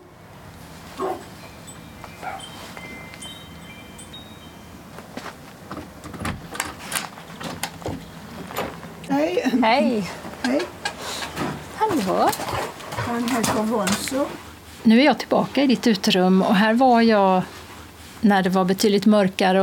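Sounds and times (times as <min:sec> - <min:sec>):
steady hum: 0:00.0 - 0:19.6
black labrador barking and yipping: 0:01.0 - 0:01.3, 0:02.2 - 0:02.5
doorbell ringing at a home: 0:01.2 - 0:05.3
speech: 0:09.3 - 0:10.8, 0:12.0 - 0:17.6, 0:18.2 - 0:19.6.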